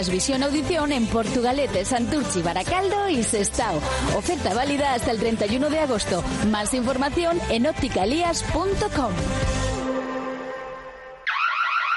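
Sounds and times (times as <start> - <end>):
speech: 0.0 - 9.6
electronic alarm blaring: 11.2 - 11.9.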